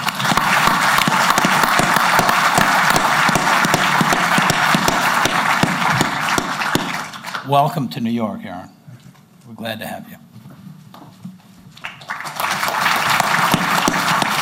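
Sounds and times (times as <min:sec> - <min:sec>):
large crowd applauding a new player: 0:00.0 - 0:07.6, 0:11.8 - 0:14.4
speech: 0:07.5 - 0:08.8, 0:09.6 - 0:10.2.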